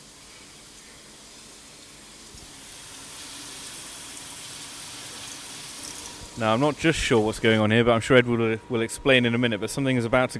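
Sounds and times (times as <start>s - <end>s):
water sizzling and steaming off hot hinges: 0.0s - 7.7s
speech: 6.4s - 10.3s.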